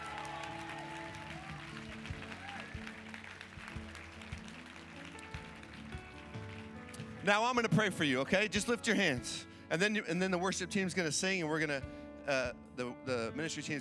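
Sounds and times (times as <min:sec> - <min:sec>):
audience clapping and applauding: 0:00.0 - 0:08.0
speech: 0:07.2 - 0:13.7.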